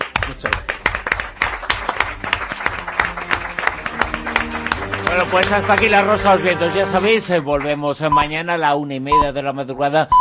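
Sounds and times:
studio audience applause: 0.0 - 7.8
speech: 5.2 - 10.1.

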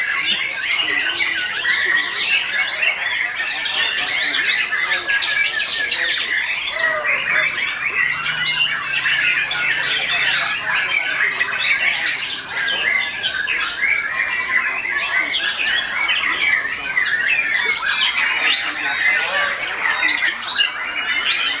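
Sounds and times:
Oriental magpie-robin song with chirps, squeaky whistles and harsh notes: 0.0 - 21.5.

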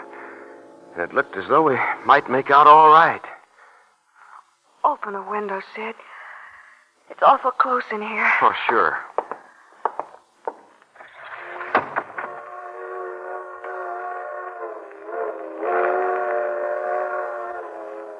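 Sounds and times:
speech: 1.0 - 3.3, 4.8 - 6.1, 7.1 - 9.1
long multi-toned freight train whistle blast: 12.2 - 18.1.

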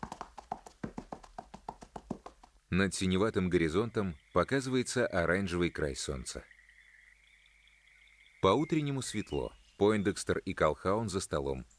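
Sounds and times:
saddled horse galloping between trees at dawn: 0.0 - 2.6
speech: 2.7 - 6.5, 8.4 - 11.7.

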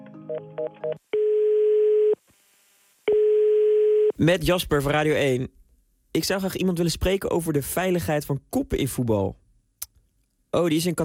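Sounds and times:
speech: 0.3 - 1.2, 4.2 - 9.4, 10.5 - 11.0
telephone call tone while calling a national football association: 0.3 - 2.2, 3.1 - 4.2.

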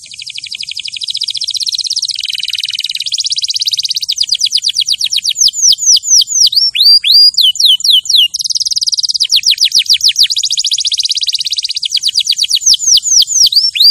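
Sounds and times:
champion canary song used as a master training recording: 0.0 - 13.8.

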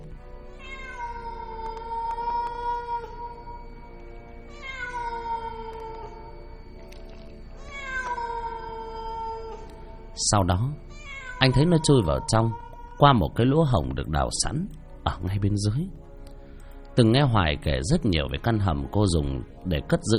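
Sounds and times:
stray cat yowling mournfully: 0.5 - 3.7, 4.5 - 6.5, 7.6 - 9.8, 10.9 - 13.8
speech: 10.2 - 10.8, 11.4 - 16.0, 17.0 - 20.1.

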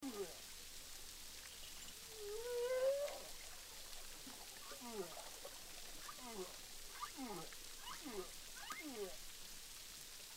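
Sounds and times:
dense crackling underwater background noise: 0.0 - 10.3
humpback whale song recorded underwater with a hydrophone at Boucan Canot, Réunion Island: 1.8 - 9.2.

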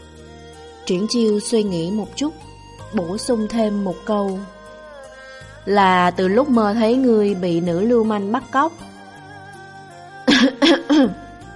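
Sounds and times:
speech: 0.9 - 4.6, 5.6 - 8.9, 10.7 - 11.2
dry rough cough: 10.3 - 11.2.

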